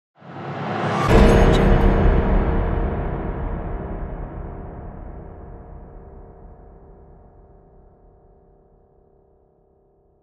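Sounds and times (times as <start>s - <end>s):
danger piano stinger: 0.2s - 7.5s.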